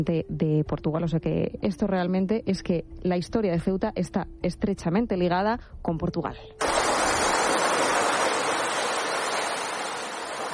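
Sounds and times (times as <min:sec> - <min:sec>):
speech: 0:00.0 - 0:07.0
sea waves rushing: 0:06.6 - 0:10.5.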